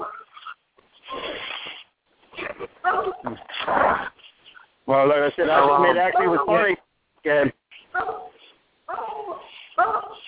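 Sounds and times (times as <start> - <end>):
dog barking over a phone call: 2.8 - 3.3, 6.0 - 6.6, 7.9 - 10.2
speech: 4.9 - 7.6.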